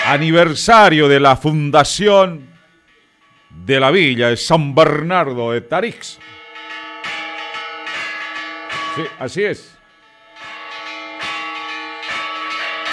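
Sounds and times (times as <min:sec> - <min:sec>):
church bells pealing: 0:00.0 - 0:12.9
speech: 0:00.1 - 0:02.5, 0:03.5 - 0:06.4, 0:09.0 - 0:09.7.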